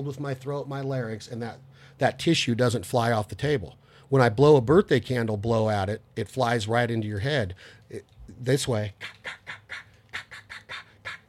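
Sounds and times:
speech: 0.0 - 9.8
single-reed duck call blown: 8.9 - 11.2.

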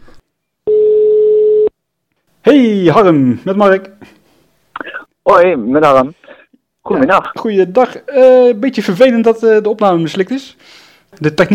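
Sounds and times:
telephone ringback tone as a call is placed: 0.7 - 1.7
speech: 2.4 - 4.2, 5.3 - 6.2, 6.8 - 11.5.

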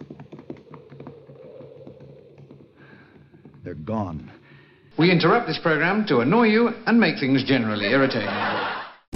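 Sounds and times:
horse hooves clip-clopping: 0.0 - 4.4
speech: 3.6 - 4.4, 5.0 - 8.8.

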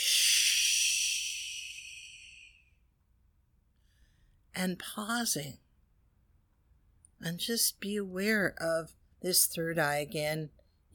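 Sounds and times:
slow airy exhale: 0.0 - 2.8
speech: 4.6 - 5.6, 7.2 - 10.6.

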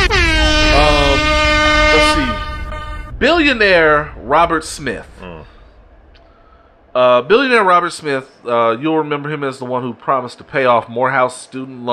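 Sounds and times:
loud sustained air horn blaring: 0.0 - 4.8
speech: 3.4 - 5.6, 6.9 - 11.9.

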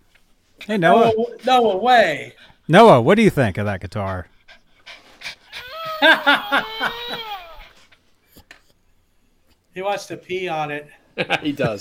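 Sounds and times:
speech: 0.6 - 4.3, 6.0 - 7.3, 9.8 - 11.7
dog panting rapidly: 3.9 - 5.7
laughter: 5.7 - 7.7, 11.2 - 11.7.

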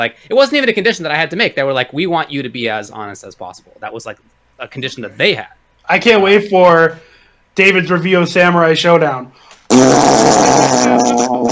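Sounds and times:
speech: 0.0 - 11.5
person blowing a buzzy raspberry imitating a fart noise: 9.7 - 11.5.

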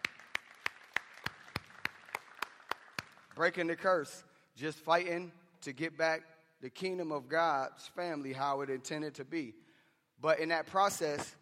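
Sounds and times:
applause with crisp distinct claps: 0.0 - 3.7
speech: 3.4 - 9.6, 10.2 - 11.3.

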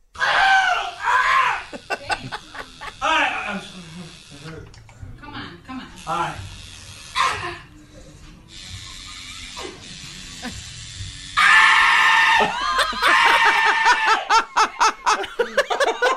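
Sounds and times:
man screaming while getting tattooed: 0.2 - 1.8, 11.4 - 14.3
pained yelps: 0.2 - 1.9, 11.4 - 14.7
nervous laughter from others: 0.9 - 4.4, 8.7 - 10.8, 12.1 - 16.1
steady mechanical buzz: 1.7 - 11.5.

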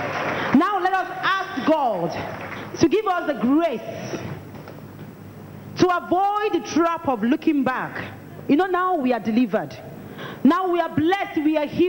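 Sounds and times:
audience clapping: 0.0 - 2.8
speech: 1.7 - 4.3, 5.8 - 11.8.

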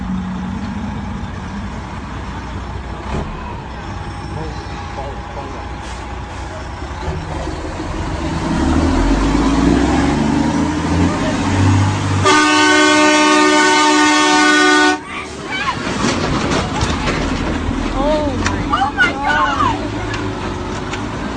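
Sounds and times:
livestock transport truck engine running: 0.0 - 21.3
people talking: 4.1 - 5.8, 10.9 - 11.8, 15.0 - 17.1, 17.9 - 20.4
truck air brakes hissing: 5.7 - 6.9.

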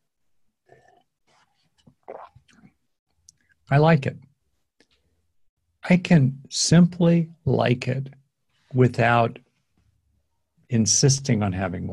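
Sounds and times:
slurping and swallowing water with kombucha from a glass: 0.6 - 3.6
speech: 3.7 - 4.2, 5.9 - 9.4, 10.7 - 11.9.

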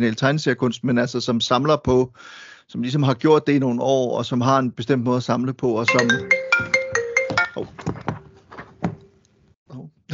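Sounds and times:
speech: 0.0 - 6.8
phone ringtone electronic melody of bright tonal beeps: 5.9 - 7.6.

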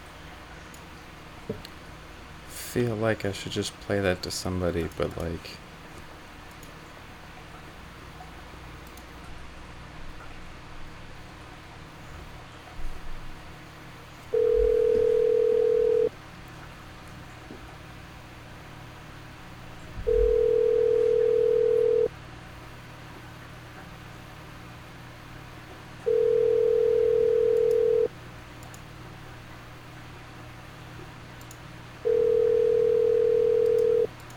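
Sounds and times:
speech: 2.8 - 5.6
telephone ringing tone on a dialed call: 14.3 - 16.1, 20.1 - 22.1, 26.0 - 28.1, 32.0 - 34.1.

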